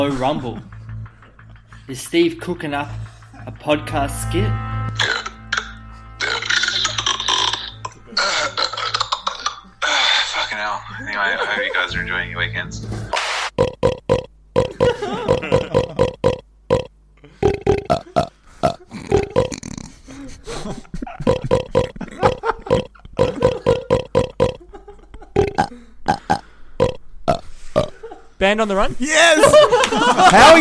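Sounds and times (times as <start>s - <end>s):
speech: 0.0s - 0.8s, 1.9s - 5.1s, 11.3s - 13.2s, 28.5s - 30.5s
person burping: 5.0s - 10.3s, 13.6s - 20.0s, 21.2s - 24.6s, 25.4s - 28.0s
laughter: 6.3s - 7.3s, 8.0s - 11.9s, 14.7s - 16.0s, 19.9s - 23.8s, 29.3s - 30.5s.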